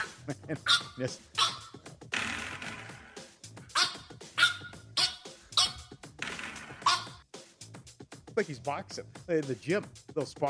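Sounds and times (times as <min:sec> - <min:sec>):
small French Bulldog barking squeakily: 0:00.0 - 0:01.8, 0:03.7 - 0:05.9, 0:06.6 - 0:07.2
speech: 0:00.3 - 0:01.5, 0:08.4 - 0:10.4.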